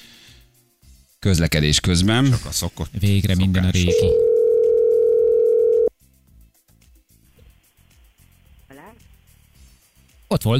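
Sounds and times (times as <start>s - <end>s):
speech: 1.2s - 4.3s, 10.3s - 10.5s
loud steady telephone dial tone: 3.9s - 5.9s.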